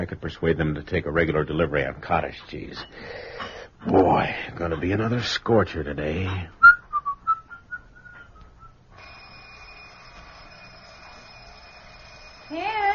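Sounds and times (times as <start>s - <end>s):
speech: 0.0s - 6.6s
person whistling a short tune: 6.6s - 8.8s
alarm clock ringing with buzzing tone: 9.0s - 12.9s.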